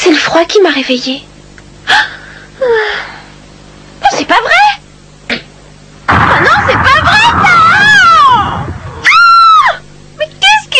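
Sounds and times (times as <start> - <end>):
speech: 0.3 - 1.3, 1.9 - 3.2, 4.1 - 4.8
loud shrill scream in the middle of the night: 6.2 - 9.8.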